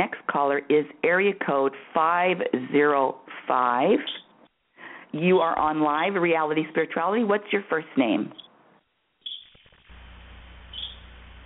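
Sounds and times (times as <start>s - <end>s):
speech: 0.0s - 4.2s, 5.1s - 8.4s
bird chirps over a phone line: 9.2s - 9.6s, 10.7s - 11.1s
low hum: 9.7s - 11.4s.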